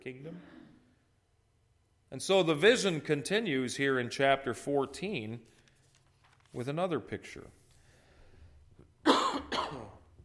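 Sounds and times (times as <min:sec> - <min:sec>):
speech: 0:00.0 - 0:00.6, 0:02.1 - 0:05.6, 0:06.5 - 0:07.6
harsh coughs with a throaty rasp: 0:09.0 - 0:10.1.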